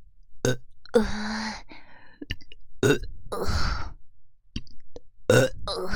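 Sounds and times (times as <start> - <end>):
person burping: 0.4 - 1.1, 2.8 - 3.6, 5.3 - 5.8.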